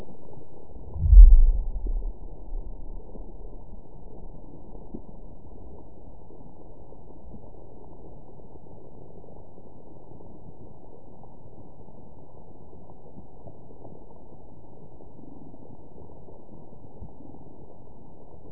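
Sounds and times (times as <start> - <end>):
amplified seismic pulse: 0.9 - 3.6.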